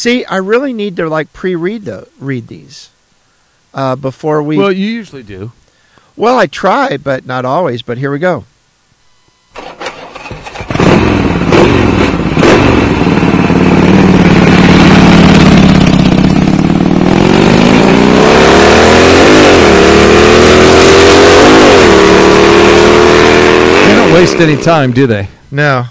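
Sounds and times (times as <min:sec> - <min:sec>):
speech: 0:00.0 - 0:03.0, 0:03.7 - 0:05.6, 0:06.2 - 0:08.5, 0:24.2 - 0:25.8
farm machine engine revving as it drives: 0:09.6 - 0:25.0.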